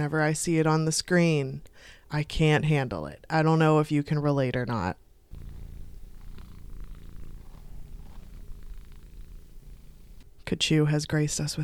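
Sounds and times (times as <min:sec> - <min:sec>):
speech: 0:00.0 - 0:05.0, 0:10.5 - 0:11.6
cat purring: 0:05.3 - 0:10.4.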